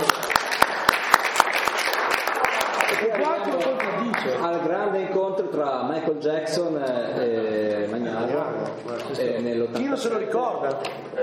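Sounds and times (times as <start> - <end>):
loud sharp claps: 0.0 - 4.4
crowd applause for a performer: 0.0 - 4.5
speech: 3.0 - 11.2.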